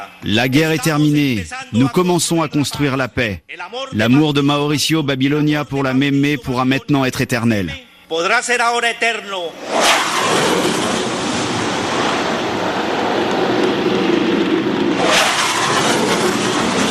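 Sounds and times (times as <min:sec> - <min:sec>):
speech: 0:00.0 - 0:10.9
fighter jet flying low over a convention centre: 0:09.6 - 0:16.9.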